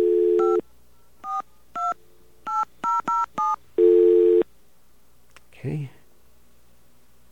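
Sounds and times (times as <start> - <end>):
steady phone tone: 0.0 - 0.6, 1.2 - 4.4.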